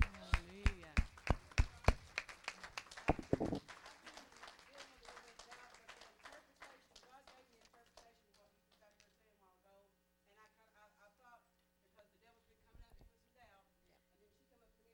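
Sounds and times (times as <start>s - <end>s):
audience applause: 0.0s - 7.1s.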